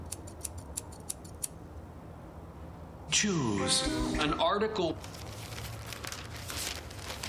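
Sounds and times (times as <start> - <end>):
scissors snipping: 0.0 - 1.5
speech: 3.2 - 5.2.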